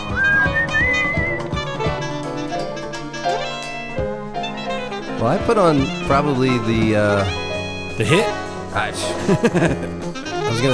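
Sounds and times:
man whistling a gliding melodic line: 0:00.0 - 0:01.9
full band backing with steady drums and sustained chords: 0:00.0 - 0:10.7
speech: 0:05.2 - 0:07.4, 0:08.0 - 0:10.7
laughter: 0:09.0 - 0:10.0.

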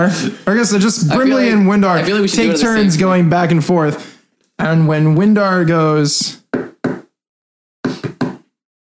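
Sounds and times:
speech: 0:00.0 - 0:06.4
knocking on a door: 0:06.5 - 0:07.1.

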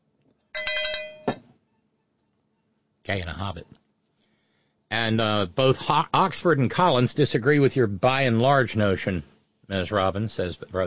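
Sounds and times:
small llama bell shaken: 0:00.6 - 0:01.4
speech: 0:03.1 - 0:03.8, 0:04.9 - 0:10.8.

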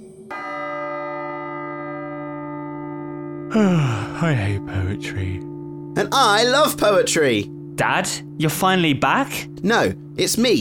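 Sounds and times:
deep bell tolling one o'clock: 0:00.0 - 0:10.5
speech: 0:03.5 - 0:10.5.

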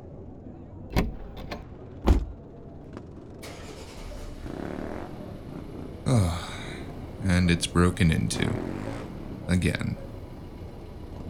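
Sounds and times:
car thumps: 0:00.9 - 0:02.4
speech: 0:07.4 - 0:08.8, 0:09.5 - 0:10.1.

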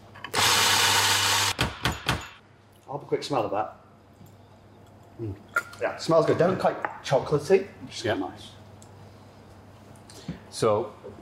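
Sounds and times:
big coffee grinder grinding beans at a medium-fine setting: 0:00.3 - 0:01.6
speech: 0:03.0 - 0:03.8, 0:05.2 - 0:08.6, 0:10.6 - 0:11.2.

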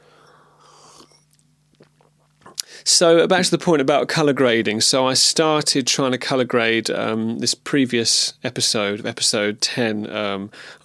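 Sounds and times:
low steady hum: 0:00.0 - 0:10.8
person sipping water: 0:00.3 - 0:02.7
wet mouth clicks: 0:00.8 - 0:02.7
speech: 0:02.9 - 0:10.8.

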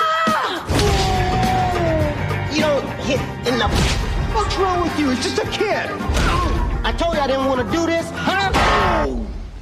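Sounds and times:
person screaming loudly: 0:00.0 - 0:02.2
speech: 0:03.1 - 0:09.4.

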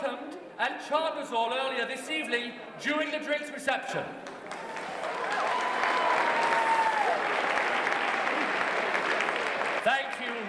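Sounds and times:
speech: 0:00.6 - 0:04.3
large audience clapping enthusiastically: 0:04.3 - 0:10.4
cheers and whistles from audience: 0:04.7 - 0:09.4.

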